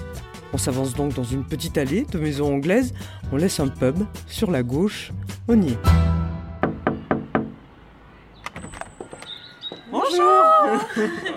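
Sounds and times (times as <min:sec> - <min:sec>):
speech: 0:00.5 - 0:06.2, 0:10.2 - 0:11.3
sharp knocks on a door: 0:06.6 - 0:07.6
thin high bird chirps outdoors: 0:06.8 - 0:10.9
laughter: 0:10.1 - 0:11.3.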